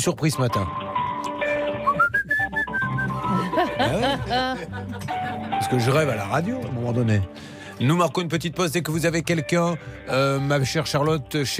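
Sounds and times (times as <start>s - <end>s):
speech: 0.0s - 0.8s, 3.8s - 11.5s
person whistling a bouncy jingle melody: 1.8s - 3.3s
laughter: 3.1s - 6.0s.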